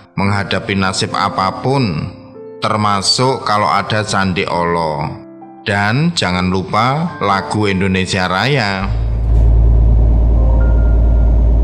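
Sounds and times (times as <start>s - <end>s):
speech: 0.2s - 9.0s
heavy truck engines idling or rolling slowly: 8.9s - 11.6s
low droning hum: 8.9s - 11.6s.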